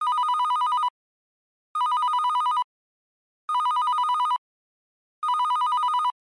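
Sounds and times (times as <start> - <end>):
telephone ringtone: 0.0 - 0.9, 1.8 - 2.7, 3.5 - 4.4, 5.2 - 6.2.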